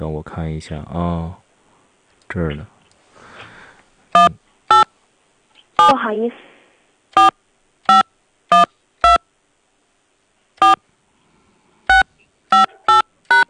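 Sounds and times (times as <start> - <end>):
speech: 0.0 - 1.4, 2.3 - 2.7, 5.9 - 6.5
mobile phone keypad DTMF beeps entering a number on an automated hotline call: 4.2 - 4.9, 7.9 - 9.2, 10.6 - 10.8, 11.9 - 13.4.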